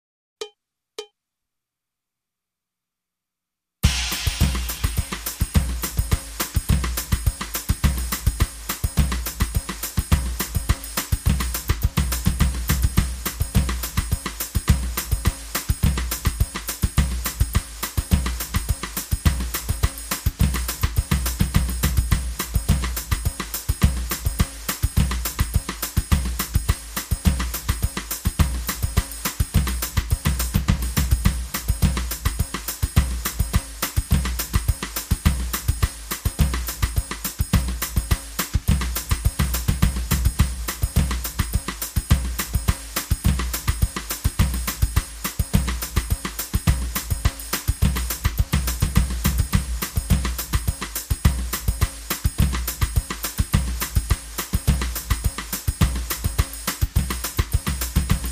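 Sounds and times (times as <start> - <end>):
samba drum kit loop: 3.8 - 58.3.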